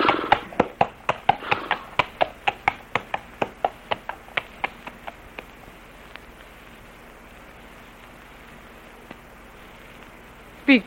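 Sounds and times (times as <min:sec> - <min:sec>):
horse hooves clip-clopping on a hard surface as it's led to the stable: 0:00.0 - 0:06.2
speech: 0:10.7 - 0:10.8.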